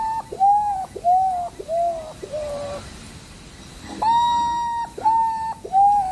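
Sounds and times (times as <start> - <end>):
common potoo calling in mournful descending whistled notes: 0.0 - 2.9, 3.8 - 6.0.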